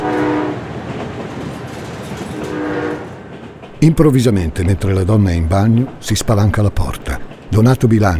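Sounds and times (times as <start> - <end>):
passenger train horn blasts: 0.0 - 0.7, 2.3 - 3.2
passenger train rolling on rails between Serravalle and Tortona in Italy: 0.0 - 8.1
speech: 3.8 - 8.1.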